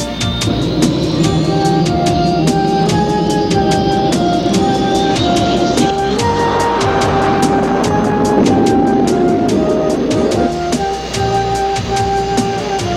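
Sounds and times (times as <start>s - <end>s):
jet turbine whine climbing in pitch: 0.0s - 12.9s
presidential jet plane engine roaring at takeoff at an airport in Oslo Norway: 0.0s - 12.9s.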